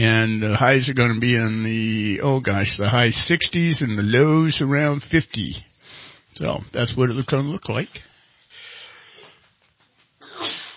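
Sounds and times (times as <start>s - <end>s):
speech: 0.0s - 5.7s, 6.4s - 8.1s
sneeze: 10.2s - 10.7s.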